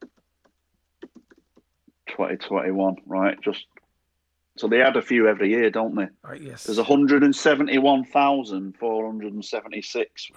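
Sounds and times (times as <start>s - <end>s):
typing on a computer keyboard: 0.0s - 1.7s
speech: 2.2s - 3.8s, 4.6s - 10.3s.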